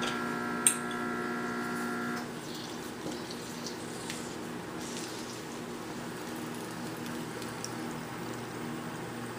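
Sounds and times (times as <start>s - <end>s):
faint appliance hum: 0.0s - 9.3s
simmering cooking pot bubbling with a soft hiss: 2.3s - 9.3s
lime juice splashing into a simmering cooking pot: 2.6s - 8.5s.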